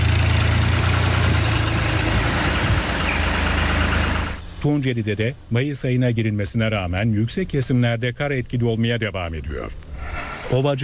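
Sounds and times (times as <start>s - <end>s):
heavy diesel tractor engine idling: 0.0s - 4.6s
speech: 4.6s - 9.8s, 10.5s - 10.8s.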